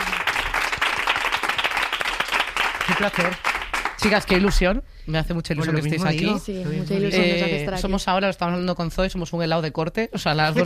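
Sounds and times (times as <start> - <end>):
applause from many hands: 0.0 - 4.7
speech: 2.9 - 10.6.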